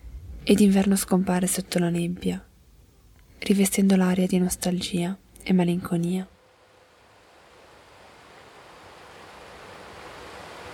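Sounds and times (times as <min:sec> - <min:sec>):
speech: 0:00.4 - 0:02.5, 0:03.4 - 0:06.4
Adda river rushing along a bank: 0:06.4 - 0:10.7.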